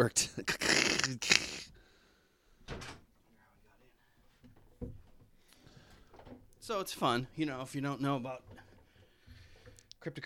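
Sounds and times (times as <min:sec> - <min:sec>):
speech: 0:00.0 - 0:01.5, 0:06.7 - 0:08.6, 0:10.0 - 0:10.2
door pushed shut with a sharp clattering thud: 0:02.6 - 0:03.1.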